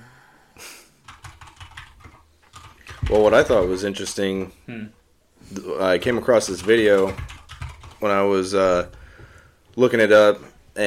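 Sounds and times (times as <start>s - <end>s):
computer keyboard typing: 1.0s - 3.9s, 6.0s - 8.1s
speech: 3.1s - 7.3s, 8.0s - 9.0s, 9.8s - 10.8s.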